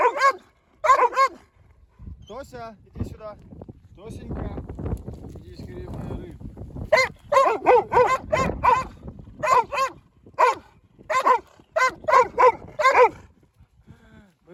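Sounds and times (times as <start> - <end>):
dog barking and whimpering with high yelping cries: 0.0 - 1.4, 6.9 - 13.3
speech: 2.4 - 8.5.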